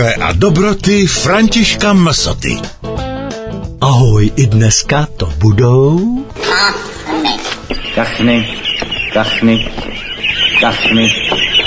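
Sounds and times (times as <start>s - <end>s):
speech: 0.0s - 3.0s, 3.8s - 8.6s, 9.2s - 10.0s, 10.6s - 11.6s
ducks quacking: 6.4s - 11.6s
fowl-like chatter: 6.5s - 11.6s.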